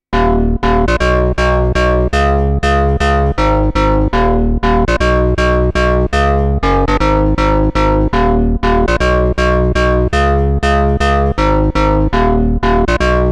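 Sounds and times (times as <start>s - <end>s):
angry bass: 0.1s - 13.3s.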